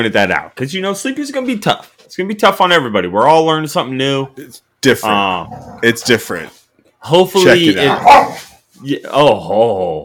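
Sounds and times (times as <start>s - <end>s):
speech: 0.0s - 10.0s
dog barking: 7.8s - 8.5s.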